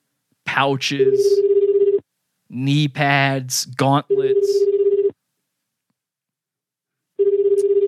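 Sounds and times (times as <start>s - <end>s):
speech: 0.6s - 1.5s, 2.6s - 4.8s
outgoing phone call electronic ringback tone: 1.4s - 2.0s, 4.3s - 5.2s, 7.2s - 7.8s.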